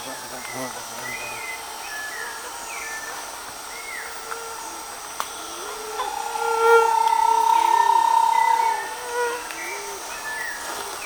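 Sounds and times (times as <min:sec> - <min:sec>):
Bahia tapaculo sustained even trill: 0:05.4 - 0:09.8.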